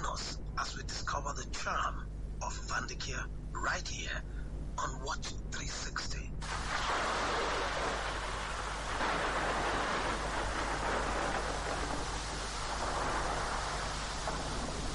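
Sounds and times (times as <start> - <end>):
speech: 0.6 - 7.2
steady rain drumming on thatched roofs: 6.4 - 14.9.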